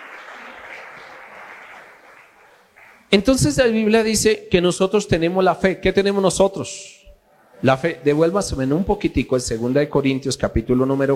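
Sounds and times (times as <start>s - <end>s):
audience applauding: 0.0s - 3.2s
speech: 3.1s - 7.0s, 7.6s - 11.1s.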